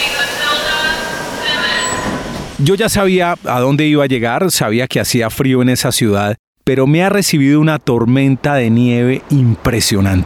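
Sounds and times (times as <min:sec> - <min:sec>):
train rumbling on rails: 0:00.0 - 0:02.7
speech: 0:02.6 - 0:10.2.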